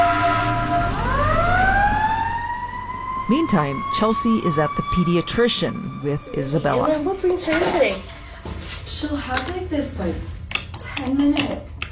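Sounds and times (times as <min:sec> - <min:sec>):
low engine rumble: 0:00.0 - 0:07.5
emergency vehicle siren wailing: 0:00.0 - 0:08.0
speech: 0:03.3 - 0:08.2, 0:08.9 - 0:10.4, 0:11.0 - 0:11.8.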